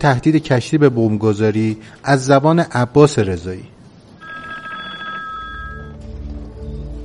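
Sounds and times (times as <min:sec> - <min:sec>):
speech: 0:00.0 - 0:03.7
telephone ringing at a ship's telephone exchange: 0:04.2 - 0:06.0.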